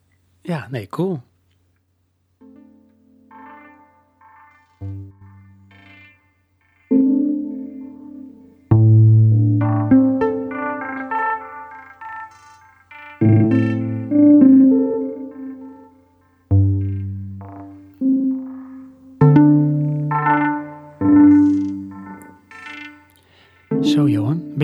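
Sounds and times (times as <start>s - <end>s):
speech: 0.4s - 1.3s
bright plinking electronic tones from a Mars lander recording: 2.4s - 24.6s.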